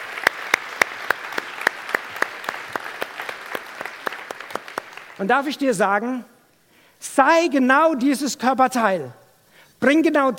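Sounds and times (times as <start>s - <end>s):
audience clapping in rhythm: 0.0s - 5.5s
speech: 5.2s - 6.3s, 7.0s - 9.2s, 9.8s - 10.3s.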